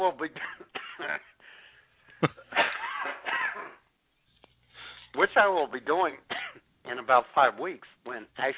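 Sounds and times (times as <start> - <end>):
speech: 0.0 - 1.3, 5.4 - 8.5
smoker's harsh raspy hacking cough: 0.3 - 1.4, 2.1 - 3.9, 6.3 - 6.7.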